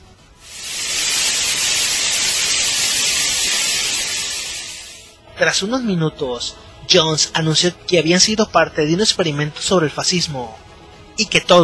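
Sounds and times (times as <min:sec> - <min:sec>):
television white noise static: 0:00.4 - 0:05.7
speech: 0:05.4 - 0:11.6.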